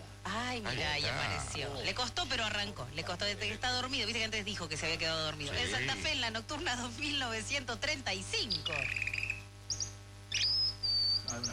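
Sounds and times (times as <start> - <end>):
steady low hum: 0.0 - 11.5
speech: 0.5 - 9.0
small bird chirping sound effect: 8.4 - 11.5.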